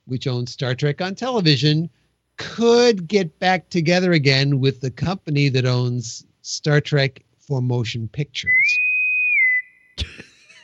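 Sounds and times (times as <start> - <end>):
speech: 0.1 - 8.8
whistled note: 8.5 - 10.0.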